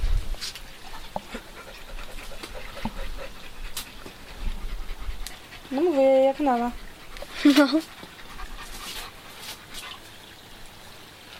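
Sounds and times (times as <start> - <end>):
dog panting under a table: 1.2 - 10.0
speech: 5.7 - 6.8, 7.4 - 7.9.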